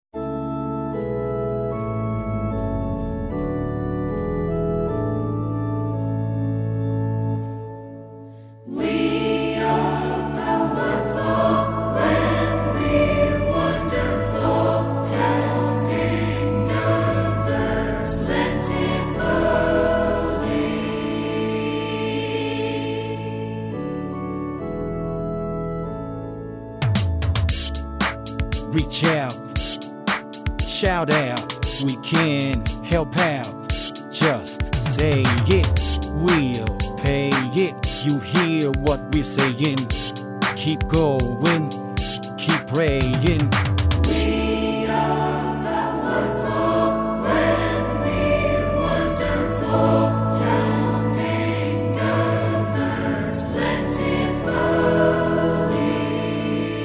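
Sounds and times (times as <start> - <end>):
choral organ music: 0.2 - 56.8.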